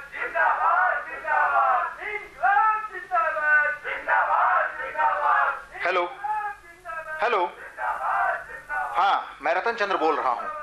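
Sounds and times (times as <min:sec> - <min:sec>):
large angry crowd shouting together: 0:00.1 - 0:02.7, 0:03.4 - 0:05.7, 0:07.6 - 0:08.9
speech: 0:07.3 - 0:07.6, 0:09.5 - 0:10.5.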